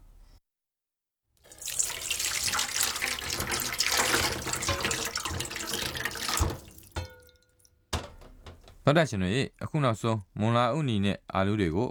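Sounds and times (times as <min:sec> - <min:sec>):
tap water rushing over fried fish balls in a strainer: 0:01.5 - 0:08.7
speech: 0:08.9 - 0:11.8.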